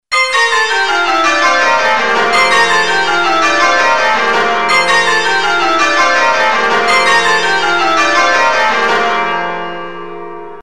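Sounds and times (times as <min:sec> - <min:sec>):
church bells change ringing in rounds: 0:00.1 - 0:10.6.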